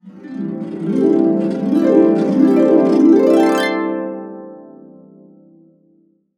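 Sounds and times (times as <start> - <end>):
harp cascading up and down in C: 0.0 - 4.5.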